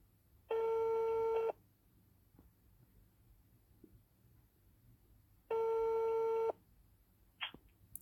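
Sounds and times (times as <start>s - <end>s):
low noise: 0.0s - 8.0s
ringback tone of an outgoing telephone call placed for an interview: 0.5s - 1.6s, 5.5s - 6.6s.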